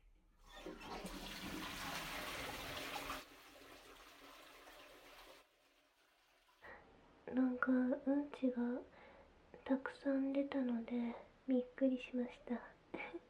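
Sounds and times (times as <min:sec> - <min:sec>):
toilet flushing: 0:00.4 - 0:06.8
speech: 0:07.3 - 0:09.0, 0:09.7 - 0:13.0.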